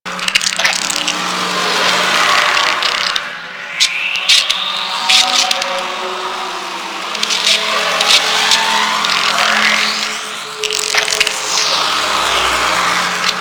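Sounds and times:
hostile small corruption pickup sound loop: 0.1s - 13.3s.

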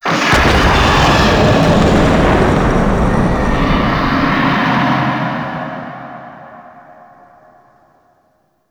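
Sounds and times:
infested hive destruction rumble in gameplay: 0.1s - 6.1s.

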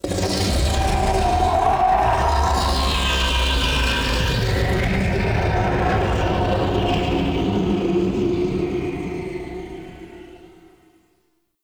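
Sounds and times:
scream in a chasm: 0.0s - 10.9s.

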